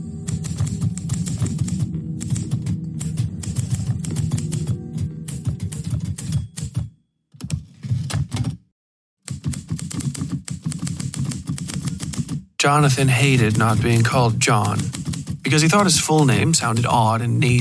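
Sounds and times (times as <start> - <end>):
typewriter keys clattering: 0.3 - 4.7, 5.3 - 6.9, 9.3 - 12.4, 13.0 - 16.6
speech: 12.7 - 17.5.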